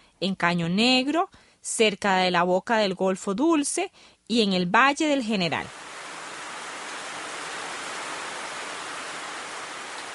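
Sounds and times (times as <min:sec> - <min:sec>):
speech: 0:00.2 - 0:05.9
steady dense rain pouring down: 0:05.7 - 0:10.1.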